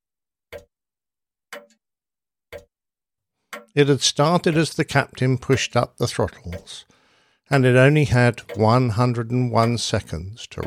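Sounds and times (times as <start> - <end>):
clock ticking: 1.5 - 1.8, 3.5 - 10.6
speech: 3.8 - 10.6.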